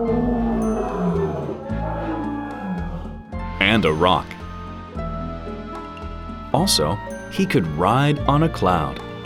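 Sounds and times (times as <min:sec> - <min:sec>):
lion roaring: 0:00.0 - 0:03.2
speech: 0:03.7 - 0:04.4, 0:06.6 - 0:09.1.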